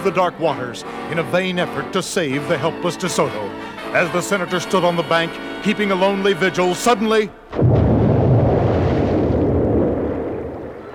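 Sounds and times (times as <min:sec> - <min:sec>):
speech: 0:00.0 - 0:07.8
explosion: 0:07.5 - 0:10.9.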